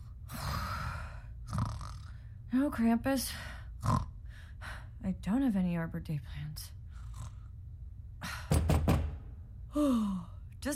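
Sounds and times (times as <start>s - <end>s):
speech: 2.5s - 4.1s, 5.0s - 6.8s, 9.8s - 10.7s
quick firm knocks on a door: 8.5s - 9.3s.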